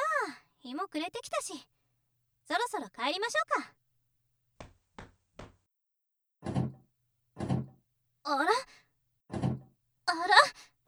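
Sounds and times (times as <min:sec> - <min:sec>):
speech: 0:00.2 - 0:01.8, 0:02.5 - 0:03.8, 0:08.3 - 0:08.8, 0:10.1 - 0:10.7
stuck door rattling as someone tries to open it: 0:06.4 - 0:06.8, 0:07.4 - 0:07.8, 0:09.3 - 0:09.7.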